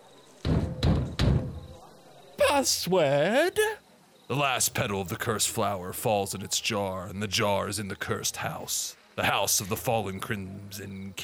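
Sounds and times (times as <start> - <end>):
heavy coded knocks on a tavern door: 0.5 - 1.6
speech: 2.6 - 11.2.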